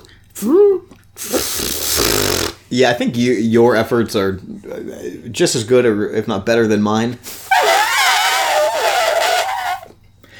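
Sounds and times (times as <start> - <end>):
speech: 0.4 - 0.9, 2.7 - 7.4
person imitating elephant trumpeting: 7.5 - 9.9.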